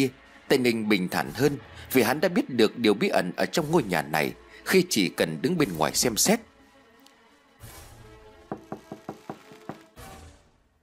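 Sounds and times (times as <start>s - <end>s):
speech: 0.0s - 6.5s
knocking on a house door at night: 8.5s - 9.8s.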